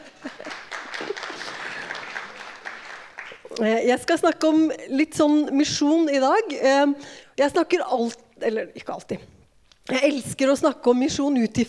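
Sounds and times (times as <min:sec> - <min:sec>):
audience applause: 0:00.3 - 0:03.5
speech: 0:03.6 - 0:11.6.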